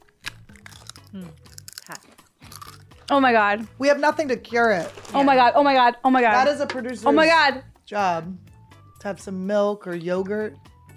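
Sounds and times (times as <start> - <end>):
spicy chips being chewed: 0.0 - 3.1
speech: 1.1 - 2.1, 3.1 - 8.4, 9.0 - 10.7.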